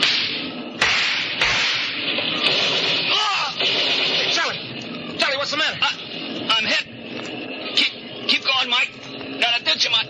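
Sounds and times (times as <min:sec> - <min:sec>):
Tommy gun shots fired at a car in a chase: 0:00.0 - 0:04.6
loud steady broadband roar: 0:00.0 - 0:10.0.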